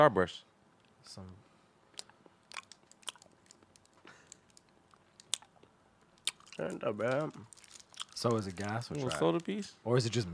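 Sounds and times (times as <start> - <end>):
speech: 0.0 - 1.4, 6.6 - 7.5, 8.2 - 10.3
irregular smacking and clicking mouth sounds: 1.9 - 8.4
wet chewing of a chewy fruit candy: 1.9 - 9.6.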